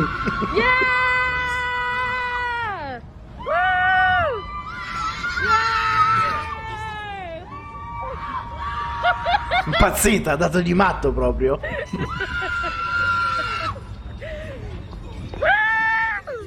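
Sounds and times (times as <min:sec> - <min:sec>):
laughter: 0:00.0 - 0:01.0, 0:08.6 - 0:10.3, 0:11.4 - 0:14.7
speech: 0:00.0 - 0:01.0, 0:09.8 - 0:12.8
woman screaming and whooping with joy outdoors: 0:00.0 - 0:09.7, 0:11.9 - 0:13.9, 0:15.4 - 0:16.4
street noise: 0:00.0 - 0:16.4.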